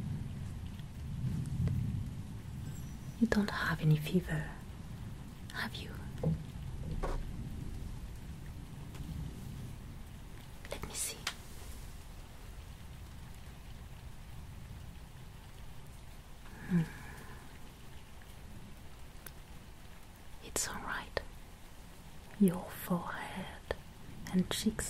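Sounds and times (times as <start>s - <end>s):
deep rolling thunder on a stormy night: 0.0s - 19.9s
steady rain hissing on a stormy night: 0.0s - 24.8s
speech: 3.2s - 4.6s, 5.6s - 6.4s.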